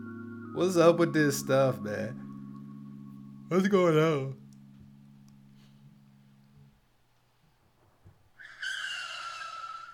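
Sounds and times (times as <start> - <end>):
speech: 0.6 - 2.2, 3.5 - 4.4
car tires skidding with high-pitched screech: 8.4 - 9.9.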